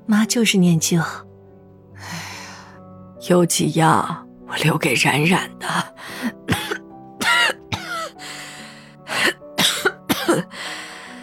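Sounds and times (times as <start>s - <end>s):
speech: 0.1s - 1.3s, 2.0s - 2.2s, 3.2s - 5.9s
elderly grandmother coughing weakly: 6.5s - 8.2s, 9.1s - 10.5s.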